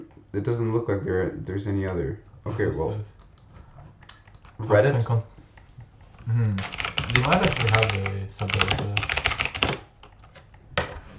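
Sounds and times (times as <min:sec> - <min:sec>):
speech: 0:00.3 - 0:03.2, 0:04.6 - 0:05.3, 0:06.3 - 0:09.3
typing on a Swedish computer keyboard: 0:06.6 - 0:10.3.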